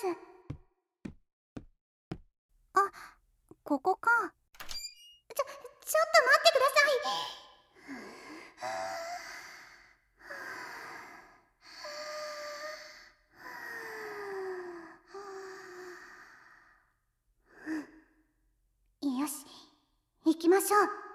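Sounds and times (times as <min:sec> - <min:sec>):
speech: 0:00.0 - 0:00.3, 0:03.7 - 0:04.4, 0:05.4 - 0:08.0, 0:08.6 - 0:09.2, 0:20.4 - 0:21.0
person taking deep breaths before going into a toilet: 0:07.8 - 0:16.9.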